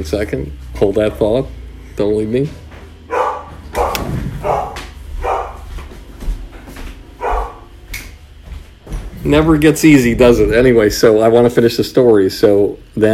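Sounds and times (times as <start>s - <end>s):
speech: 0.0s - 2.6s, 9.2s - 13.1s
pet dog barking: 3.1s - 5.7s, 7.2s - 7.7s
low thumping noise: 3.6s - 5.2s, 8.3s - 11.6s.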